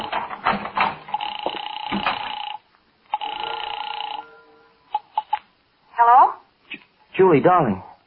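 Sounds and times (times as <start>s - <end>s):
telephone ringing: 1.0s - 5.4s
speech: 7.2s - 7.9s.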